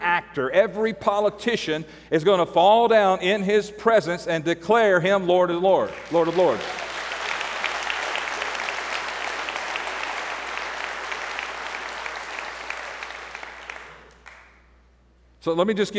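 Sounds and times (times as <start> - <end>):
speech: 0.2 - 6.8, 15.4 - 15.9
audience clapping: 5.8 - 14.7.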